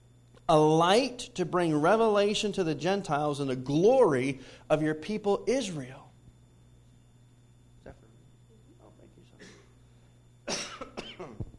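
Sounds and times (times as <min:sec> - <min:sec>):
low steady hum: 0:00.0 - 0:11.5
speech: 0:00.5 - 0:06.0
person coughing: 0:09.4 - 0:09.8, 0:10.5 - 0:11.5.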